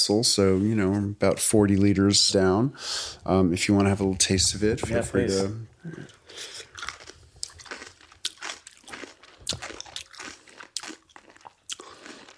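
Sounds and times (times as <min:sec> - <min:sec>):
speech: 0:00.0 - 0:06.5
person chewing radish sauerkraut: 0:06.1 - 0:12.3.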